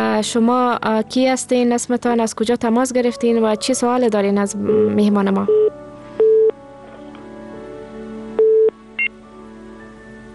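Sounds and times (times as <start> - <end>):
speech: 0.2 - 5.8
telephone busy signal beeps from a failed call: 5.5 - 6.6, 8.4 - 9.1.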